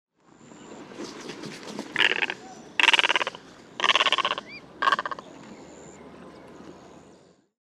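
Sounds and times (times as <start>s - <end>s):
great egret: 0.7s - 7.2s.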